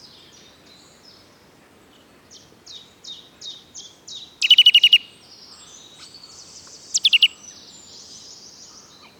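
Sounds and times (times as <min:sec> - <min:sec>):
Eurasian nuthatch Sitta europaea calling: 0:04.4 - 0:07.6.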